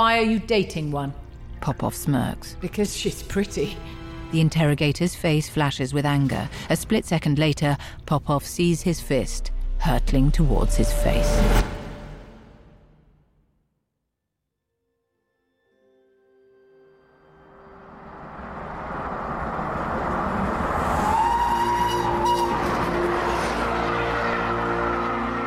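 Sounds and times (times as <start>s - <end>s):
speech: 0.0s - 11.8s
train rumbling past in the Swiss Alps: 8.9s - 12.9s, 17.4s - 25.4s
train whistle blast: 20.9s - 25.4s.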